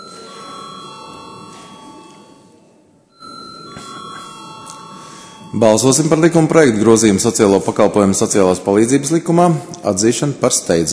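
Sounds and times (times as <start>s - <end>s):
electric bell ringing in a parliament chamber before a vote: 0.0s - 6.9s
speech: 5.5s - 10.9s.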